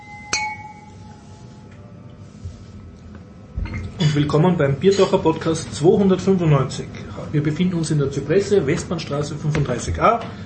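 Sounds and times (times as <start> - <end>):
beer glasses clinking during a toast at a venue in Vienna Austria: 0.0 - 1.0
speech: 4.2 - 10.4.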